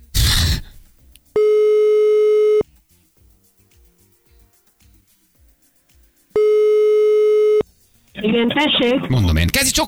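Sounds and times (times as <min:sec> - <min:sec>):
brief burst of noise: 0:00.0 - 0:00.8
telephone ringback tone of an outgoing call during a live radio broadcast: 0:01.4 - 0:02.6, 0:06.4 - 0:07.6
speech: 0:08.3 - 0:09.8.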